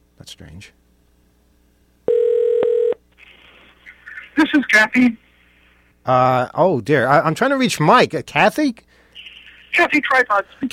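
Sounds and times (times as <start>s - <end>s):
speech: 0.2s - 0.9s, 4.4s - 5.2s, 6.0s - 8.9s, 9.7s - 10.7s
telephone tone on an outgoing call: 2.1s - 3.0s.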